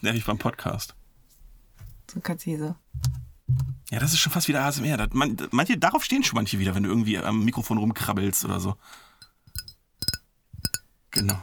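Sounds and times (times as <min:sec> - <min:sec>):
speech: 0:00.0 - 0:01.0, 0:02.1 - 0:09.1, 0:11.2 - 0:11.4
fingernails tapping a glass holding water: 0:09.5 - 0:11.4.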